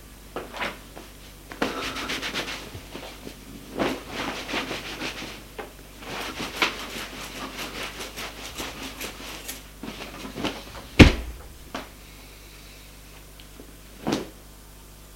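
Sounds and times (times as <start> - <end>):
man drying off with a towel after a shower: 1.6 - 11.7.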